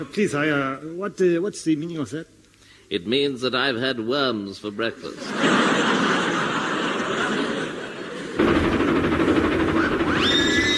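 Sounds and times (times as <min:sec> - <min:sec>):
speech: 0:00.0 - 0:05.6
laughter: 0:05.0 - 0:08.5
approaching steam train chuffing: 0:08.4 - 0:10.7
high steam train whistle: 0:10.1 - 0:10.7.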